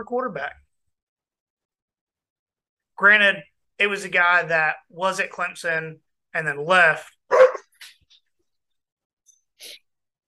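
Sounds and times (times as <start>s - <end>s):
speech: 0.0s - 0.6s, 3.0s - 7.9s
dogs barking: 7.3s - 7.8s.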